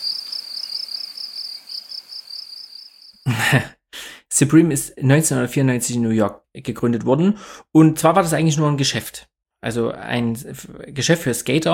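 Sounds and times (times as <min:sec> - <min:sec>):
cricket-chirping sound effect: 0:00.0 - 0:03.3
speech: 0:03.3 - 0:03.8, 0:04.4 - 0:11.7.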